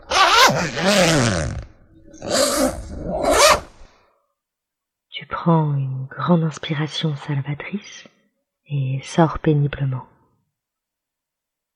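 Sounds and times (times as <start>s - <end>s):
tent zipper being opened: 0.0s - 4.0s
speech: 0.5s - 1.6s, 2.2s - 2.8s, 5.4s - 8.1s, 8.7s - 10.1s.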